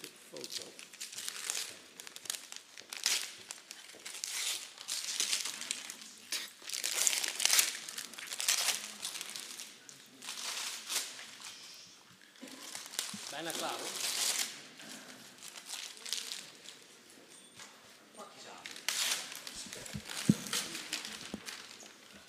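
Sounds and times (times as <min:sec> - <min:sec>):
paper crinkling as a package is unwrapped: 0:00.3 - 0:11.6, 0:12.2 - 0:14.7, 0:15.3 - 0:16.9, 0:18.5 - 0:22.2
speech: 0:13.4 - 0:14.1.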